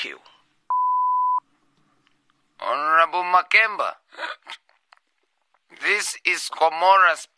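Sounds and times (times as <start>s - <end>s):
speech: 0.0s - 0.4s, 2.7s - 4.6s, 5.7s - 7.3s
faint room noise: 0.0s - 7.3s
answering machine single electronic beep of one pure tone: 0.7s - 1.4s.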